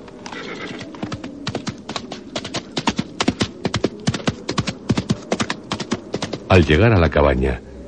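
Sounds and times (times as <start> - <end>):
horse galloping with pounding hooves: 0.0 - 6.9
horse neighing: 0.2 - 1.1
speech: 6.6 - 7.7.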